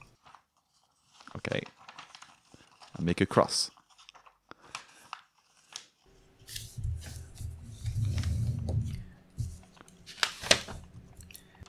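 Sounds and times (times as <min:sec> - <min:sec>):
sheet of paper crinkling while unfolded and folded along creases: 0:00.0 - 0:11.6
speech: 0:01.4 - 0:01.8, 0:03.0 - 0:03.8
sustained scraping swipe on paper: 0:05.4 - 0:11.3.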